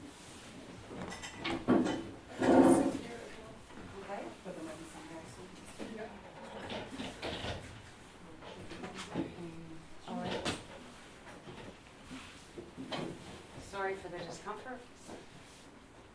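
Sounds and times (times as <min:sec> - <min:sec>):
chairs scraping and clattering as they are shifted around a room: 0:00.3 - 0:03.4, 0:05.6 - 0:14.5
speech: 0:13.9 - 0:14.9.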